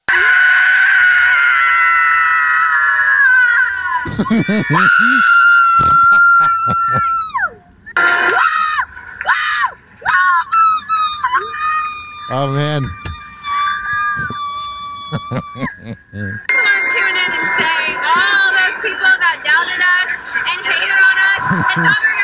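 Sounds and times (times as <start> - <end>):
loud shrill sustained scream: 0.0 - 4.1, 4.7 - 7.6, 8.3 - 15.7
laughter: 4.1 - 5.2, 5.8 - 7.2, 13.8 - 16.4, 21.3 - 22.2
speech: 4.2 - 6.0, 6.6 - 7.2, 12.3 - 13.1, 15.1 - 16.5, 17.6 - 22.1.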